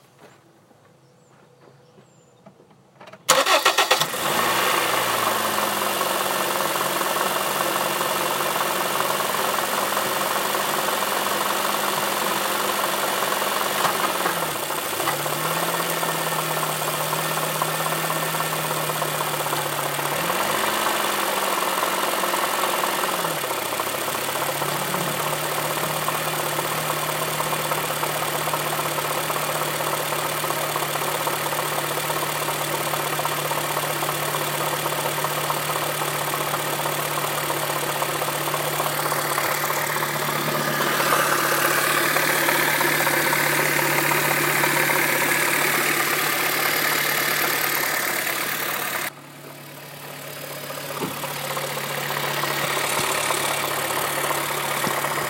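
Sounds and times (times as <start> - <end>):
dying engine loud knocking on a cold morning start: 3.3 - 49.1, 50.6 - 55.2.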